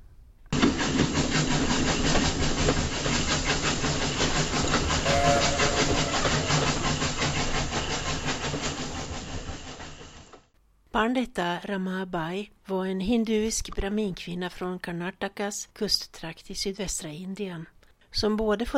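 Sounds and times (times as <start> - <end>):
train rumbling along rails in India: 0.6 - 10.3
speech: 11.0 - 18.7.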